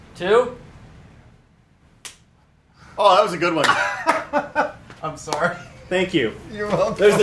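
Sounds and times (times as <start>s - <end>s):
speech: 0.2s - 0.6s, 3.0s - 7.2s
right hand slapping a man's face: 2.0s - 2.3s
laughter: 3.6s - 7.2s.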